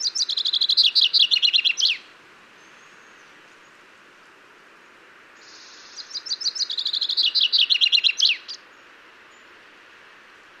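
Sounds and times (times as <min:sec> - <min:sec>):
common chaffinch Fringilla coelebs singing: 0:00.0 - 0:03.8, 0:05.4 - 0:09.6
faint background hiss: 0:00.0 - 0:10.5.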